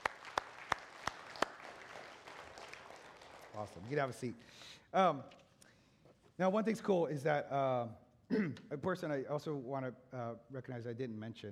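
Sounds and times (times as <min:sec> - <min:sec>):
sparse audience applause: 0:00.0 - 0:04.4
speech: 0:03.6 - 0:05.4, 0:06.4 - 0:11.4.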